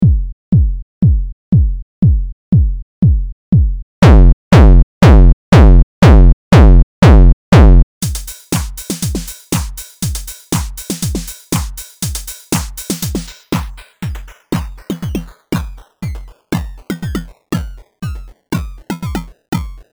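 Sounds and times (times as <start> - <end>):
distorted bitcrushed kick drum loop: 0.0 - 19.9.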